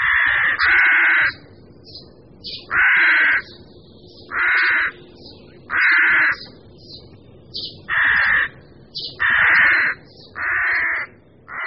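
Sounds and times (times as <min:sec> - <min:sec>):
rooks cawing at a town-centre colony: 0:00.0 - 0:01.5, 0:02.6 - 0:03.6, 0:04.2 - 0:06.5, 0:07.8 - 0:11.6.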